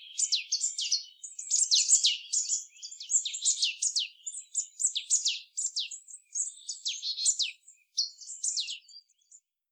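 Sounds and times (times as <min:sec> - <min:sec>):
Marsh tit Poecile palustris calls: 0:00.0 - 0:09.0.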